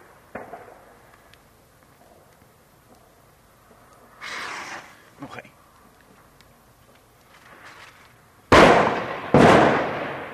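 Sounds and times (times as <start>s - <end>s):
speech: 5.2s - 5.6s
explosion blasts: 8.5s - 10.3s.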